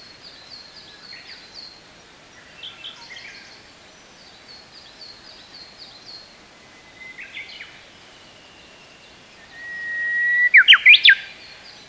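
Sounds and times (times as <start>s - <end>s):
bush warbler singing: 0.0s - 11.8s.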